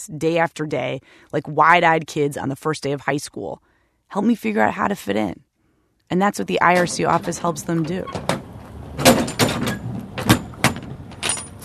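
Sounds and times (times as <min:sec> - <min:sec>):
speech: 0:00.0 - 0:05.5, 0:06.1 - 0:08.3
truck back door slammed shut by a moving company: 0:06.8 - 0:11.6.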